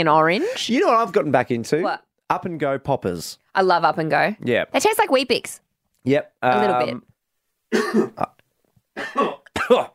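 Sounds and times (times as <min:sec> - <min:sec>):
speech: 0:00.0 - 0:07.1, 0:07.7 - 0:08.4, 0:09.0 - 0:09.9
person coughing in harsh bouts: 0:07.7 - 0:08.4, 0:09.0 - 0:09.9.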